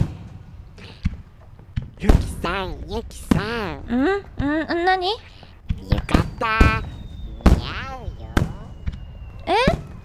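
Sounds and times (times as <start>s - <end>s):
starmine fireworks barrage exploding: 0.0s - 10.0s
speech: 2.0s - 6.9s
excited voices calling out: 2.1s - 8.8s.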